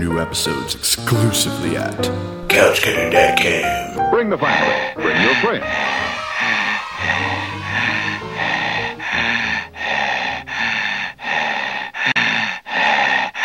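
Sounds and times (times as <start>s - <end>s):
speech: 0.0s - 6.0s
person breathing heavily and rasping, imitating a horror film heavy breather: 4.4s - 13.4s.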